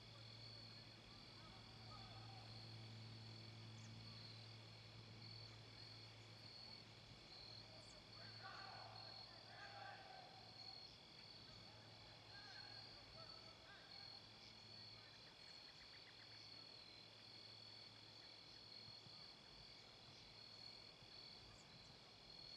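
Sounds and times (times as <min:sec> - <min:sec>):
faint voices or calls: 0:00.0 - 0:02.9, 0:07.6 - 0:14.4
insects trilling at dusk in a park: 0:00.0 - 0:22.5.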